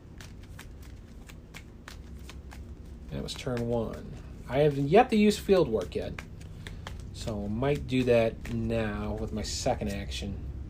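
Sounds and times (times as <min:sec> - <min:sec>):
deck of cards being shuffled: 0:00.0 - 0:10.4
speech: 0:03.1 - 0:06.3, 0:07.2 - 0:10.5.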